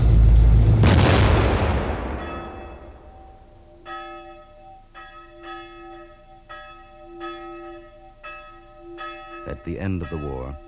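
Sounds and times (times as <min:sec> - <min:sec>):
heavy boom: 0:00.2 - 0:03.2
church bell ringing: 0:01.8 - 0:10.6.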